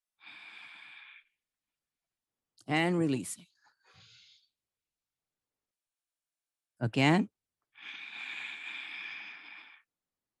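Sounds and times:
long steady airy inhalation: 0.2s - 1.4s, 3.8s - 4.6s, 7.8s - 9.9s
speech: 2.7s - 3.5s, 6.8s - 8.0s.

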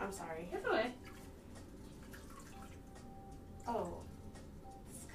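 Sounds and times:
speech: 0.1s - 1.0s
running water: 0.7s - 3.0s
water dripping from a faucet: 1.0s - 4.2s.

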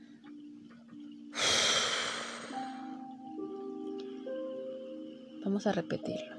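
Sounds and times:
soft sustained tones: 0.0s - 6.3s
held breath blown out forcefully: 1.4s - 2.8s
speech: 5.4s - 6.3s.

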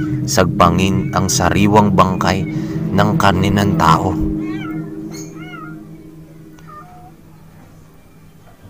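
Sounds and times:
speech: 0.0s - 4.3s
steady low hum: 0.0s - 8.6s
cats yowling and wailing: 4.3s - 8.6s.

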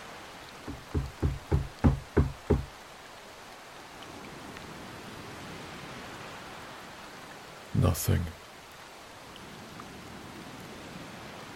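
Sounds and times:
man knocking firmly on a door: 0.7s - 2.7s
speech: 7.8s - 8.4s.

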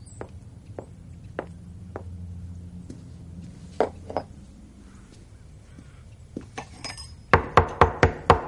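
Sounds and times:
wine glasses and a bottle clinking as set down on a table in a house: 6.6s - 7.4s.

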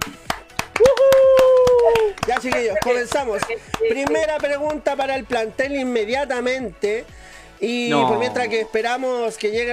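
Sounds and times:
sharp hand claps: 0.0s - 5.5s
speech: 2.4s - 9.7s.

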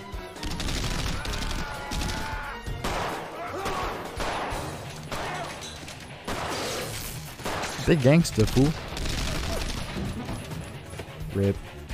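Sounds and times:
gunfire aimed at marijuana plants in a film scene: 0.4s - 5.6s, 6.2s - 10.3s
speech: 7.9s - 8.9s, 11.4s - 11.7s.

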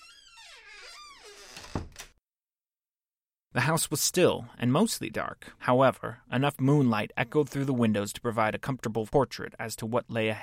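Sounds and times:
front door of a house creaking shut: 0.0s - 2.2s
soft thud of front door closing: 0.8s - 2.2s
speech: 3.6s - 10.4s.

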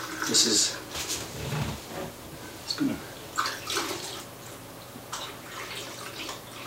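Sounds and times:
water pouring into a film developing tank: 0.0s - 0.8s, 3.4s - 4.3s, 5.1s - 6.6s
speech: 0.3s - 1.6s, 2.8s - 3.1s.

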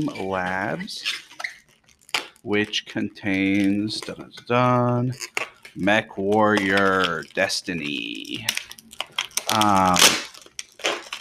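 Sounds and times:
speech: 0.0s - 1.3s, 2.4s - 8.7s, 9.5s - 10.2s
bubble wrap torn open to get at a hardcover game book: 0.0s - 11.2s.

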